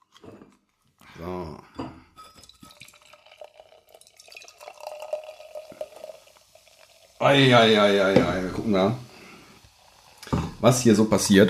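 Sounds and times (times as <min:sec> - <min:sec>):
8% beer being poured into a glass: 0:02.3 - 0:11.3
speech: 0:07.2 - 0:09.1, 0:10.6 - 0:11.4.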